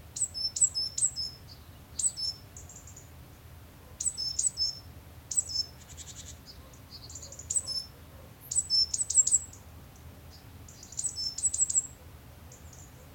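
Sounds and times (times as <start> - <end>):
great tit Parus major calling: 0.1 - 3.1, 4.0 - 9.6, 10.3 - 13.0.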